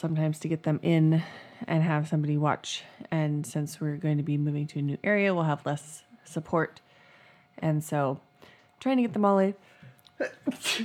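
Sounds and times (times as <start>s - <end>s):
speech: 0.0s - 6.8s, 7.6s - 10.8s
person sneezing: 10.2s - 10.8s.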